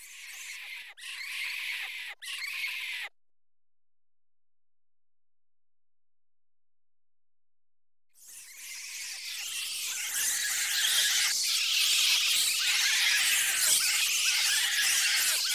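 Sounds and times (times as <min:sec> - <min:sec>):
bats squeaking: 0:00.0 - 0:03.1, 0:08.2 - 0:15.5.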